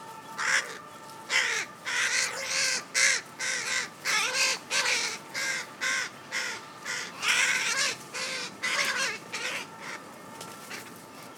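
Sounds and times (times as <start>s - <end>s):
Carrion crow Corvus corone harsh hoarse caws: 1.3s - 9.1s.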